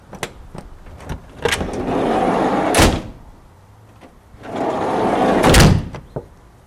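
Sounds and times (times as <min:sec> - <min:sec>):
sliding door: 0:00.9 - 0:03.2, 0:04.4 - 0:06.0.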